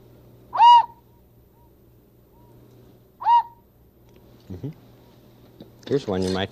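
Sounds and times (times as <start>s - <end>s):
large whistle giving breathy hooting toots: 0.6s - 1.0s, 3.2s - 3.6s
speech: 4.5s - 4.9s, 5.9s - 6.4s.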